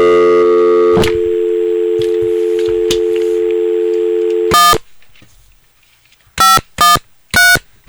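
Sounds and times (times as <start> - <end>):
phone dial tone: 0.0 - 4.8
telephone keypad beeps: 0.8 - 4.8.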